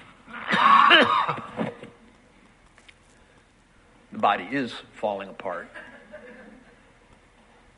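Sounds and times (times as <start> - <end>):
hoarse raspy cough: 0.4 - 1.8
speech: 1.0 - 1.5, 4.2 - 5.9
laughter: 5.8 - 7.0.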